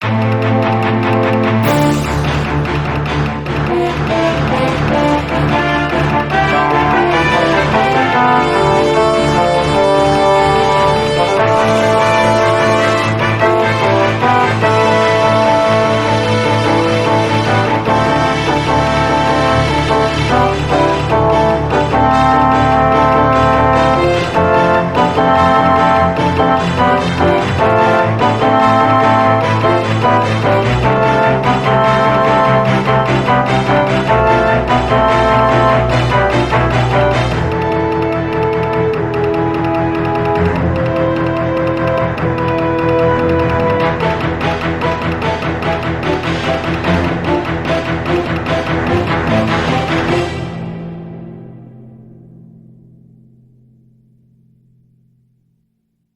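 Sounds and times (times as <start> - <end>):
fantasy background music: 0.1 - 52.3.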